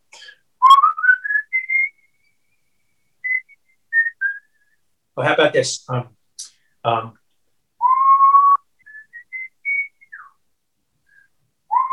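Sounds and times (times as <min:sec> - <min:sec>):
person whistling a short melodic tune: 0:00.6 - 0:02.3, 0:03.2 - 0:04.8, 0:07.8 - 0:10.4, 0:11.1 - 0:11.9
speech: 0:05.2 - 0:06.2, 0:06.8 - 0:07.2.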